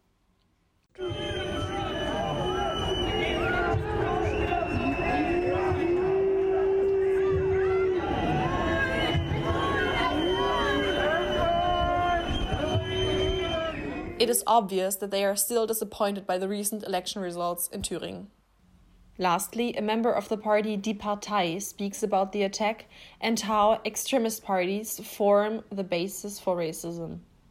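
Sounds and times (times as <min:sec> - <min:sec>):
large crowd booing and jeering: 0:01.0 - 0:14.2
speech: 0:14.2 - 0:18.4, 0:19.2 - 0:27.3.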